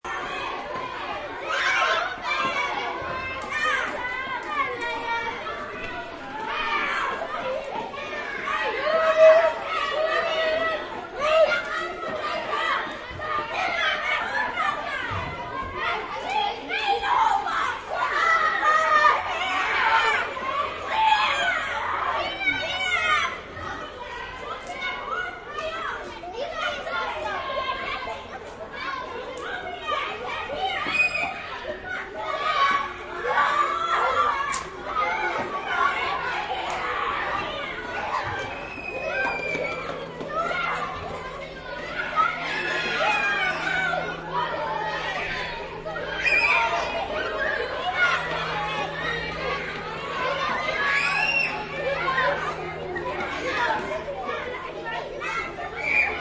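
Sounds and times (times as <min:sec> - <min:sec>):
schoolyard ambience: 0:00.0 - 0:56.2.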